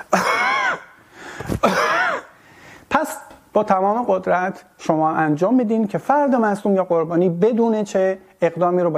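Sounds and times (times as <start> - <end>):
person coughing forcefully: 0.0 - 2.4
speech: 3.6 - 8.9.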